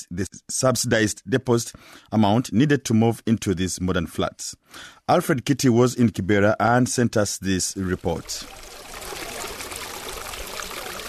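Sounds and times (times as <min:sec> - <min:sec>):
speech: 0:00.0 - 0:08.8
sewage water gushing through an open trench between blocks of flats: 0:07.8 - 0:11.0.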